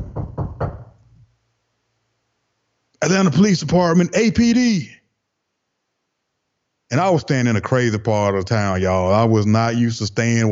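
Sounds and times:
firm knocking on a door: 0.0 - 1.0
speech: 3.0 - 5.0, 6.9 - 10.4.

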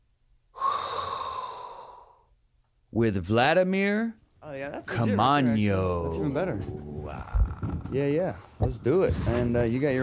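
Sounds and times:
long hissing inhalation of a hot breath: 0.6 - 2.3
speech: 3.0 - 10.0.

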